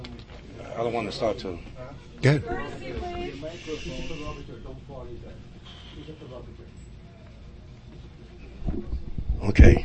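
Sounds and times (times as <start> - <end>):
murmuring voices and chatter: 0.0 - 9.0
speech: 0.8 - 6.8, 8.7 - 9.8
several audience members shushing: 2.9 - 4.8, 5.5 - 6.6.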